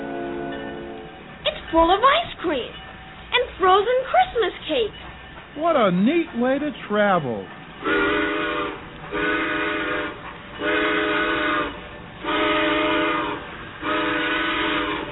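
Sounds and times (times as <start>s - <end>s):
train whistle blasts as train pulls out: 0.0s - 1.2s, 7.8s - 15.1s
speech: 1.7s - 2.8s, 3.6s - 5.0s, 5.6s - 8.2s, 9.1s - 9.5s.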